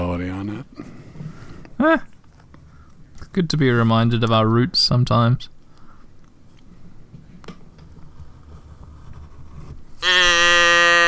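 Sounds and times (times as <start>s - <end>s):
speech: 1.8s - 2.1s, 3.4s - 5.5s
cow mooing: 10.0s - 11.0s.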